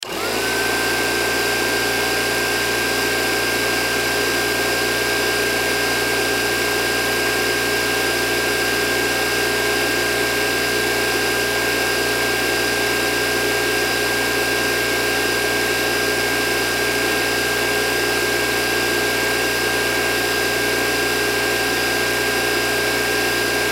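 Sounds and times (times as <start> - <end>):
electric air pump switched on, running and switched off: 0.0 - 23.7.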